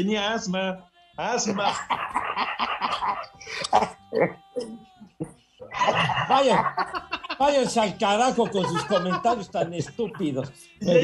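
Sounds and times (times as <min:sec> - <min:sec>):
speech: 0:00.0 - 0:11.0
laughter: 0:01.3 - 0:04.4, 0:05.6 - 0:11.0
person hacking coughs to clear something stuck in throat: 0:01.6 - 0:04.8.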